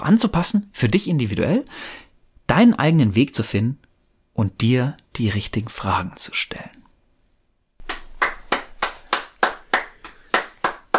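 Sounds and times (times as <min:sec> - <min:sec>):
speech: 0:00.0 - 0:03.8, 0:04.4 - 0:06.8
steady crisp hand clapping: 0:07.8 - 0:10.9.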